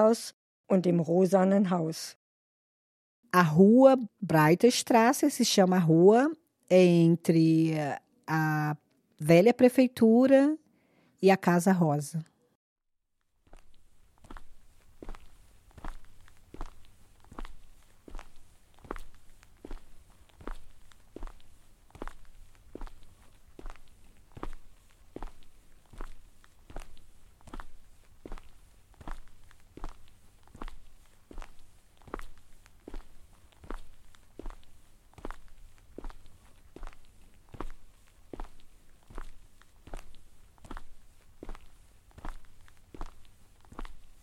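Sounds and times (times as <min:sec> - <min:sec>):
speech: 0:00.0 - 0:02.2, 0:03.3 - 0:10.6, 0:11.2 - 0:12.3
footsteps walking along an old-town street: 0:13.4 - 0:44.2.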